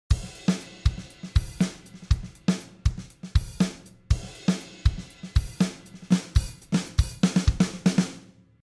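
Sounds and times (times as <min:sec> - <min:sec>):
drum software instruments: 0:00.0 - 0:08.3.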